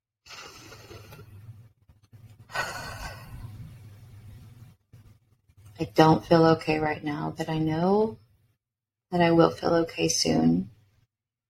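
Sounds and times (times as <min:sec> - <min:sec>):
soft deep breath: 0:02.5 - 0:03.7
speech: 0:05.8 - 0:08.2, 0:09.1 - 0:10.7.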